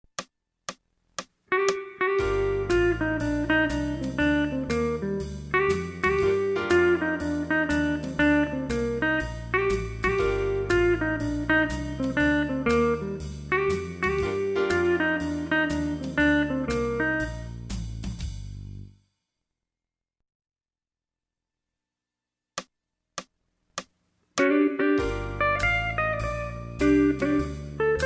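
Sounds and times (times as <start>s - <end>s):
jazz guitar riffs in Aeolian mode: 1.5s - 18.1s, 24.4s - 28.0s.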